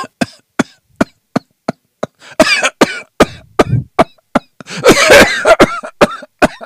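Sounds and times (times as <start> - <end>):
person imitating the persistent coughing of an asthma patient: 0.0 - 6.6.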